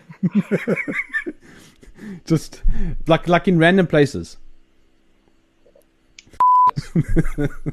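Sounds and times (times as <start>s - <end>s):
laughter: 0.0s - 1.4s, 6.8s - 7.7s
speech: 0.2s - 4.4s, 6.8s - 7.7s
censor beep: 6.4s - 6.8s.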